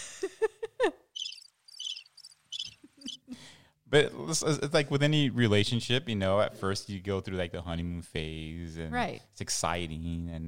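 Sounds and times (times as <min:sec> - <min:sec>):
crickets chirping: 0:01.2 - 0:03.2
speech: 0:03.9 - 0:10.4.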